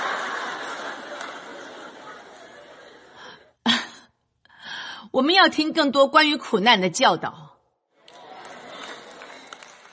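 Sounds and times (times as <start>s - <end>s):
thin scattered audience applause: 0.0s - 2.6s, 8.0s - 9.9s
laughter: 0.0s - 4.0s, 8.0s - 9.7s
speech: 5.1s - 7.4s.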